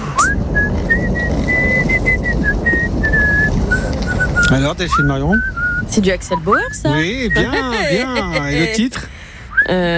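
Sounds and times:
constant low rumble: 0.0 - 9.9
person whistling a pop song melody: 0.2 - 5.8
speech: 4.5 - 9.9
laughter: 6.9 - 9.1.

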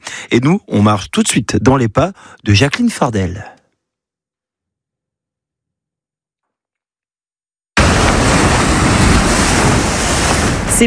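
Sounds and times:
speech: 0.3 - 3.6
strong coastal wind roaring by the sea at the Goury lighthouse: 7.8 - 10.8.

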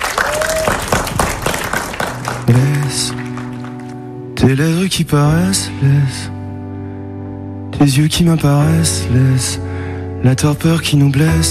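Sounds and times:
audience applause at a band concert at a cultural centre in Limoges: 0.0 - 4.2
speech: 2.5 - 3.2, 4.4 - 6.4, 7.8 - 11.4.

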